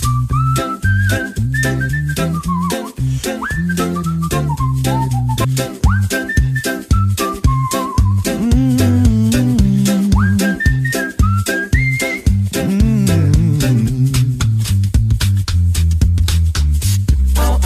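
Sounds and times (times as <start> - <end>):
whistled lead melody in a country-style comedy vocal band song: 0.0 - 14.8
percussion: 0.0 - 17.6
rhythmic backing of low voices: 8.1 - 10.8, 12.3 - 14.8.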